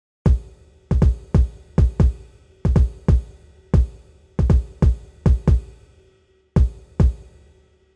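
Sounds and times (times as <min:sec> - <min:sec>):
kick drum: 0:00.3 - 0:05.8, 0:06.6 - 0:07.2.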